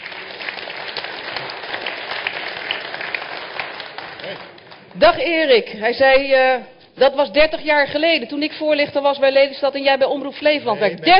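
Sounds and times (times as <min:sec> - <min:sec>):
audience applauding a political party's candidate: 0:00.0 - 0:05.0
speech: 0:04.3 - 0:11.1.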